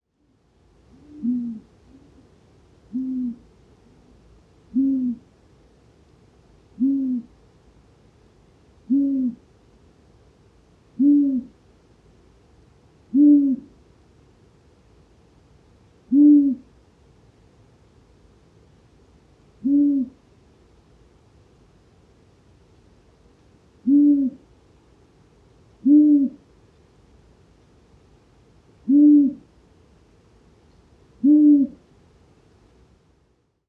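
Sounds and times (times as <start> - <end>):
night birds: 0.1 - 32.8
long-eared owl Asio otus calling: 0.9 - 2.2, 2.9 - 3.5, 4.7 - 5.3, 6.8 - 7.3, 8.8 - 9.4, 11.0 - 11.6, 13.1 - 13.8, 16.1 - 16.7, 19.6 - 20.2, 23.8 - 24.4, 25.8 - 26.4, 28.8 - 29.5, 31.2 - 31.8.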